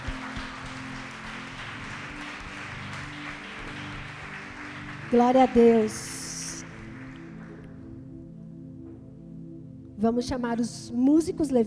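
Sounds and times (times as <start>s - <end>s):
church audience applauding after a sermon: 0.0s - 7.9s
low sustained hum or keyboard drone: 0.0s - 11.4s
speech: 5.1s - 6.2s, 10.0s - 11.6s.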